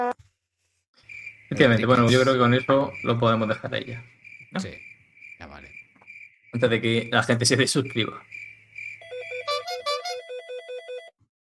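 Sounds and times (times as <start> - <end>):
speech: 1.5 - 5.7, 6.5 - 8.5
telephone ringing with a rapid electronic warble: 9.0 - 11.2.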